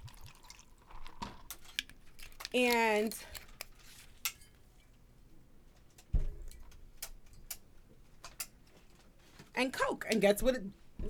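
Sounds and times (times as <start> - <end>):
vodka being poured into a glass: 0.0 - 1.9
speech: 2.5 - 3.4, 9.6 - 11.0.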